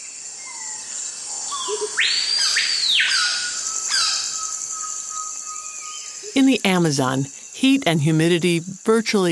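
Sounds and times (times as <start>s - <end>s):
steady high insect drone in the Peruvian Amazon rainforest: 0.0s - 9.2s
birds with rising whistled calls and chirps in the Peruvian Amazon rainforest: 1.5s - 6.4s
speech: 1.7s - 4.3s, 6.3s - 9.2s.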